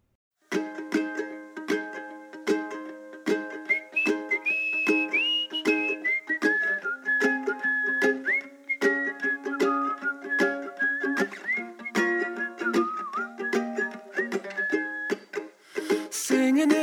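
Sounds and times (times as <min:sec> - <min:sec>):
steady sustained instrumental accompaniment: 0:00.5 - 0:16.8
whistled melody in a folky song: 0:03.4 - 0:16.0.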